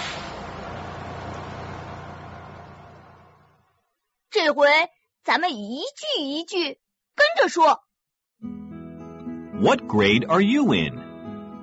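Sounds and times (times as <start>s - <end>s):
arriving bus engine roar and hiss: 0.0s - 3.6s
speech: 4.4s - 7.8s, 9.6s - 11.0s.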